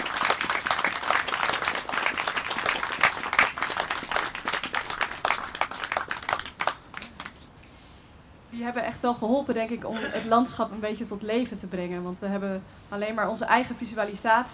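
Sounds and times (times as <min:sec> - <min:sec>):
audience applause: 0:00.0 - 0:07.4
speech: 0:08.7 - 0:14.5.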